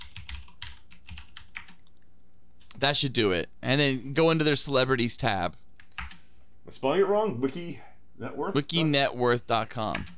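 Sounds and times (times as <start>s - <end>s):
rapid typing on a computer keyboard entering a web address: 0.0s - 1.9s, 5.8s - 6.2s
speech: 2.8s - 5.6s, 6.7s - 10.1s.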